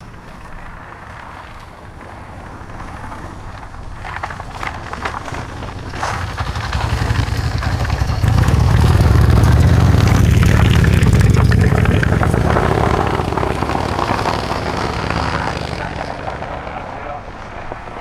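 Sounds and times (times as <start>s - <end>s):
truck approaching: 1.8s - 17.9s
motorcycle passing by: 2.6s - 17.9s.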